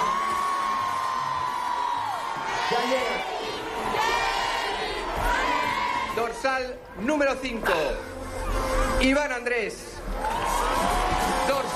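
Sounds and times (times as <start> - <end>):
whoops and cheers: 0.0 - 2.4, 10.1 - 11.7
large crowd roaring and shouting together: 0.0 - 11.7
speech: 6.4 - 10.3.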